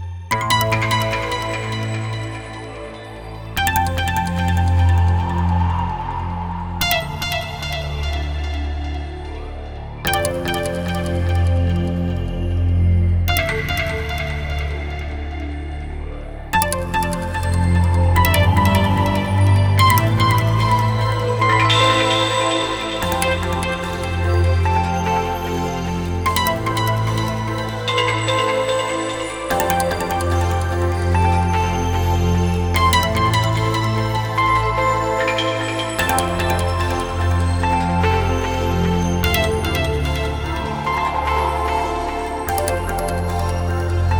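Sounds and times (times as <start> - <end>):
synth melody: 0.4 - 44.1.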